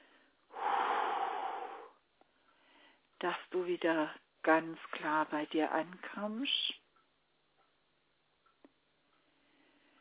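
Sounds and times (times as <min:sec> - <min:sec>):
deep breath in and out: 0:00.0 - 0:03.0
speech: 0:03.2 - 0:06.8.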